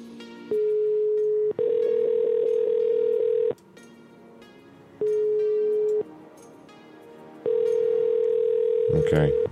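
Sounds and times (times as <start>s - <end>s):
telephone ringing tone through the line: 0.5s - 3.6s, 5.0s - 6.1s, 7.4s - 9.4s.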